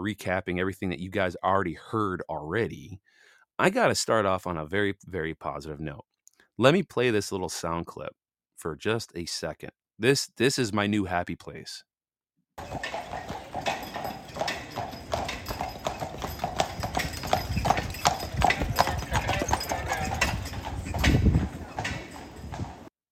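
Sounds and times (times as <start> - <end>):
speech: 0.0 - 11.9, 12.6 - 13.4
hooves of large Belgian horses clip-clopping outside a hotel: 12.6 - 22.9
low rumbling steps of large Belgian horses: 12.7 - 22.9.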